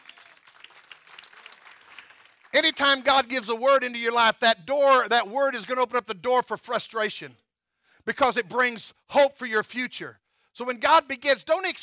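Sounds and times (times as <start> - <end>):
church congregation clapping hands during a sermon: 0.0 - 4.0
speech: 2.6 - 7.4, 8.0 - 11.8.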